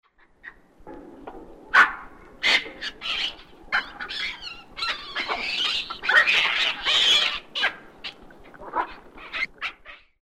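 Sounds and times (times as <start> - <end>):
baboon sounds: 2.4 - 10.2.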